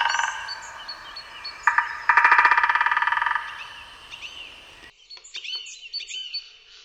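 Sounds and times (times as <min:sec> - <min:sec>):
birdsong chorus with chirps and calls: 0:00.0 - 0:04.9
woodpecker drumming on a tree: 0:00.0 - 0:04.9.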